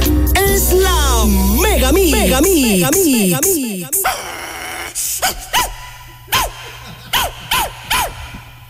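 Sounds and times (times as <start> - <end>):
low rumbling tone: 0.0 - 4.0
speech: 1.9 - 4.0
dog barking: 5.2 - 8.3.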